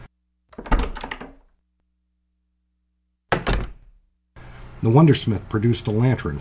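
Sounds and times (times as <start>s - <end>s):
bird shop door thudding shut: 0.5s - 1.5s, 3.3s - 4.0s
speech: 4.8s - 6.4s.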